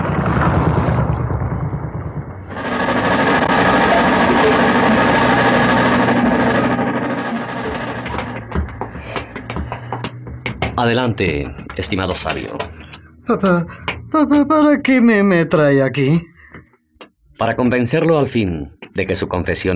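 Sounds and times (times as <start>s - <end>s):
modern powerful motorboat engine docking at a pier: 0.0s - 10.6s
speech: 10.8s - 16.3s, 17.4s - 19.7s.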